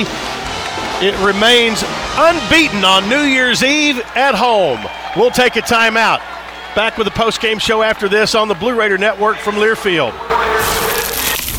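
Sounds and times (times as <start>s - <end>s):
speech: 0.0s - 0.2s, 1.0s - 10.7s
crispy pizza slice being bitten: 10.6s - 11.5s.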